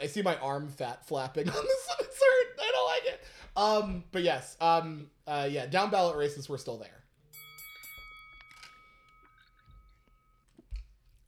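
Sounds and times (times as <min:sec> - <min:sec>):
speech: 0:00.0 - 0:02.1, 0:03.6 - 0:07.0
person taking big sips of a drink: 0:09.0 - 0:11.2.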